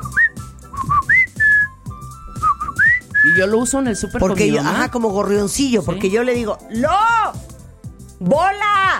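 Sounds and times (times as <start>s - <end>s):
person whistling a family call whistle: 0.0s - 4.3s
speech: 3.4s - 7.4s, 8.2s - 8.9s.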